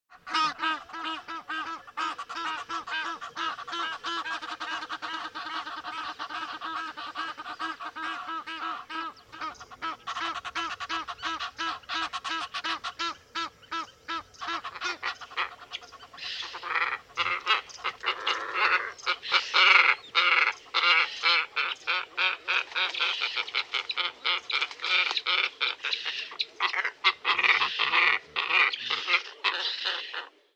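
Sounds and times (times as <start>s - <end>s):
glossy ibis Plegadis falcinellus calling: 0.1s - 30.5s.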